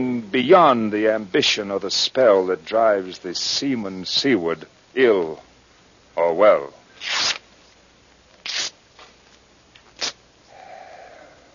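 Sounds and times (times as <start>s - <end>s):
speech: 0.0s - 5.5s, 6.2s - 7.4s
letter paper burning: 7.0s - 7.4s.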